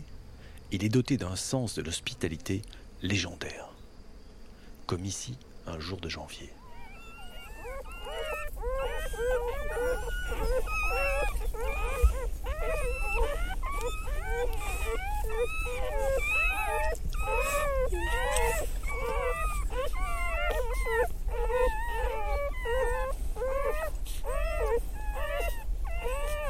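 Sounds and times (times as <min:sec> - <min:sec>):
speech: 0:00.7 - 0:03.7, 0:04.9 - 0:06.6, 0:14.9 - 0:19.3
mother dog moaning inside the hollow trunk of a chestnut tree: 0:06.5 - 0:26.4
newborn puppies whimpering and squealing inside the hollow trunk of a chestnut tree: 0:06.5 - 0:26.4.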